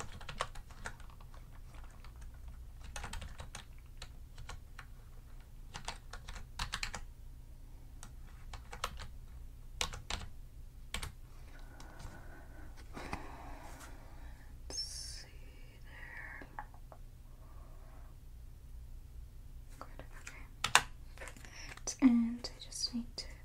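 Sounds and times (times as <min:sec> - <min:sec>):
typing a credit card number on a computer keyboard at a hotel check-in desk: 0:00.0 - 0:07.1, 0:08.0 - 0:09.1, 0:09.8 - 0:10.3, 0:10.9 - 0:11.2, 0:20.2 - 0:21.9
low steady hum: 0:00.0 - 0:23.4.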